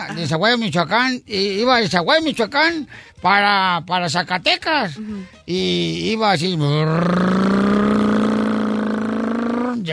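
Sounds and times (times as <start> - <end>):
speech: 0.0 - 7.6
voice imitating a motorcycle engine: 6.6 - 9.9.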